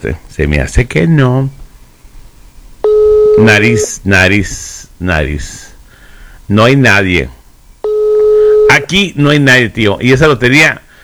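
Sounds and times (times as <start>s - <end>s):
speech: 0.0s - 1.6s, 3.4s - 5.7s, 6.5s - 7.4s, 8.7s - 10.8s
electronic telephone tone signalling an incoming phone call: 2.8s - 3.9s, 7.8s - 8.9s.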